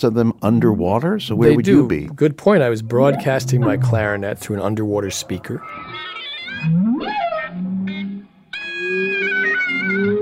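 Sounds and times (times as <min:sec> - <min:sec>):
speech: 0:00.0 - 0:08.0
humpback whale song: 0:02.9 - 0:10.2.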